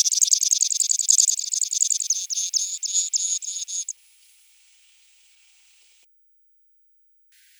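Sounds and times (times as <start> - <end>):
Pechora pipit song with buzzy rattling trill: 0.0 - 3.9
sharp isolated high clicks: 0.0 - 3.9.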